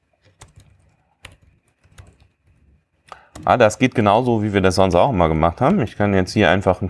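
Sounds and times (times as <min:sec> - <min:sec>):
typing math notation on a computer keyboard: 0:00.2 - 0:02.6
speech: 0:03.4 - 0:06.8.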